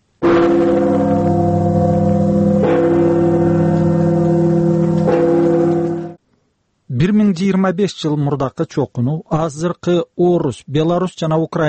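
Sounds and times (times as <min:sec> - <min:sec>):
church bells ringing at noon: 0:00.2 - 0:06.2
loud sustained humming metallic drone: 0:00.2 - 0:06.2
speech: 0:07.3 - 0:11.6.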